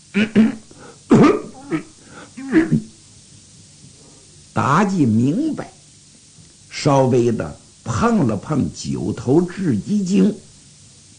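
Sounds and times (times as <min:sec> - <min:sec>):
storyteller imitating coughs: 0:00.1 - 0:02.9
speech: 0:00.2 - 0:00.6, 0:04.6 - 0:05.8, 0:06.8 - 0:10.5.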